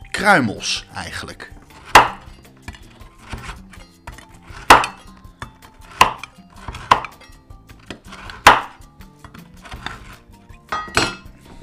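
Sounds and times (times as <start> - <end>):
speech: 0.2 - 1.6
large sharp knife chopping stroopwafel on a cutting board: 1.6 - 5.0, 5.8 - 7.2, 7.8 - 11.6.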